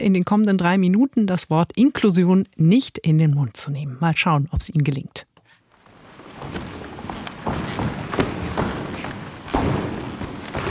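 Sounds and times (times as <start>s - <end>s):
speech: 0.0s - 5.3s
group stomping on creaking wooden floor: 5.8s - 10.7s.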